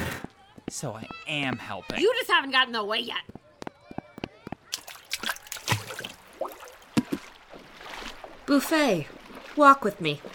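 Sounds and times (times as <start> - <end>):
speech: 0.7 - 3.4, 8.5 - 10.3
water sloshing and splashing in a lazy river: 4.7 - 10.3.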